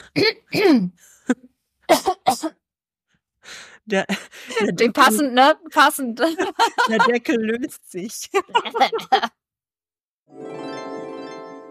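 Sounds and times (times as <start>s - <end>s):
person clearing throat: 0.0s - 0.9s, 1.9s - 2.6s
speech: 0.2s - 2.6s, 3.5s - 9.4s
laughter: 6.2s - 7.4s, 8.3s - 9.4s.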